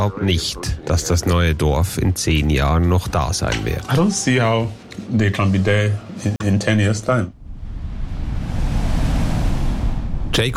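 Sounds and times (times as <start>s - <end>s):
speech: 0.0s - 7.4s, 10.4s - 10.5s
sea waves washing against a coastal village: 7.4s - 10.5s
wind: 7.4s - 10.5s.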